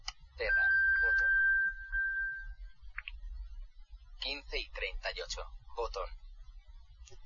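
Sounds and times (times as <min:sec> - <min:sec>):
Apple Watch playing its find-device alert sound: 0:00.5 - 0:02.4
speech: 0:04.5 - 0:06.2.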